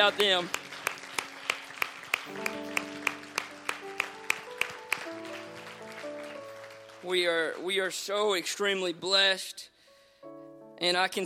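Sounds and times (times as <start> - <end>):
speech: 0.0 - 0.6, 2.3 - 2.7, 7.0 - 11.2
crowd clapping in a steady even rhythm: 0.0 - 8.0
sustained keyboard or organ chords: 0.0 - 8.9, 10.2 - 11.2.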